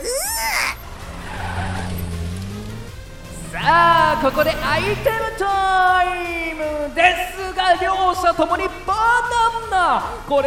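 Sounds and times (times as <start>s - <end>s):
video-game race car tires squealing: 0.0s - 5.5s
video-game race car engine drone: 0.8s - 7.0s
speech: 3.7s - 10.4s.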